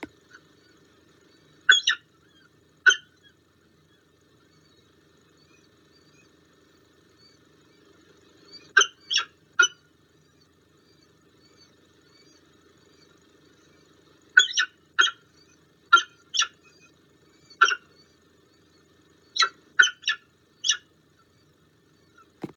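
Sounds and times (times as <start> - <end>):
female peregrine falcon crying while feeding: 1.7 - 4.6, 8.5 - 9.8, 14.4 - 18.0, 19.4 - 20.9.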